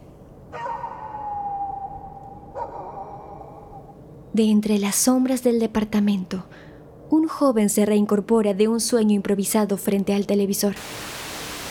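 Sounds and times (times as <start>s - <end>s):
dog howling mournfully: 0.6s - 3.8s
speech: 4.4s - 11.2s.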